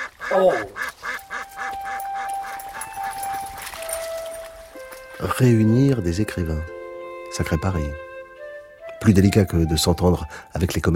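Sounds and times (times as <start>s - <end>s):
ducks quacking while a dog chases them: 0.0s - 3.1s
speech: 0.3s - 0.9s, 5.2s - 6.7s, 7.4s - 8.0s, 9.0s - 10.9s.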